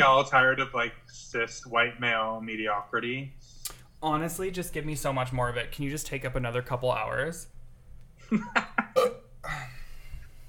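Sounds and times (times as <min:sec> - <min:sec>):
speech: 0:00.0 - 0:07.6, 0:08.3 - 0:09.7
loud raspy drawn-out belch: 0:09.0 - 0:09.7.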